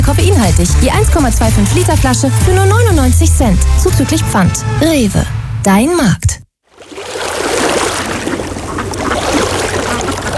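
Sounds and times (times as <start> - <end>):
speech: 0.2 - 6.4
rushing moving water at a lake or river: 6.7 - 10.3.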